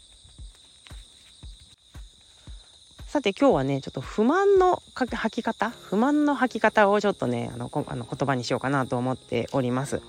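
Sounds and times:
footsteps of a person walking crunching: 0.0 - 3.2
chorus of bell crickets at night: 0.0 - 10.0
speech: 3.1 - 10.0.

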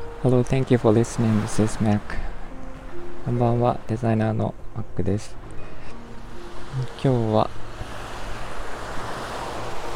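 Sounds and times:
low wind rumble: 0.0 - 9.9
ocean surf breaking along the shore: 0.0 - 9.9
speech: 0.2 - 2.3, 3.2 - 5.4, 6.8 - 7.6.

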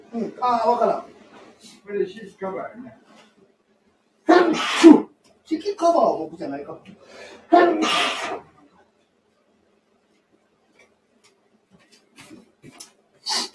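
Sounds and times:
speech: 0.1 - 3.3, 4.5 - 8.5
person sneezing: 4.3 - 5.1, 7.5 - 8.5, 13.2 - 13.5
sharp breaths: 7.0 - 8.5, 13.2 - 13.5.

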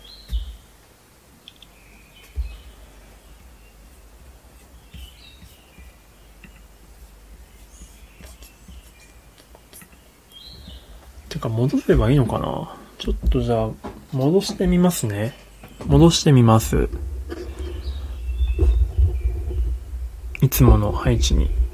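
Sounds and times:
birds chirping outdoors: 0.0 - 21.7
low rumble and hiss: 0.0 - 21.7
speech: 11.3 - 17.1, 20.6 - 21.6.

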